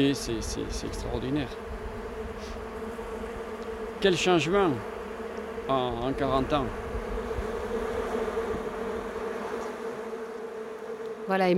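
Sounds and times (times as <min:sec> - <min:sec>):
speech: 0:00.0 - 0:01.8, 0:04.0 - 0:04.9, 0:05.7 - 0:06.8, 0:11.3 - 0:11.5
many bees buzzing: 0:00.0 - 0:11.5.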